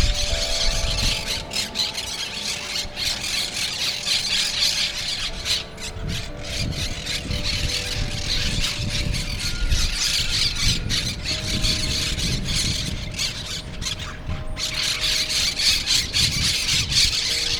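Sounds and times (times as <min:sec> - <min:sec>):
monk parakeets squawking: 0:00.0 - 0:17.5.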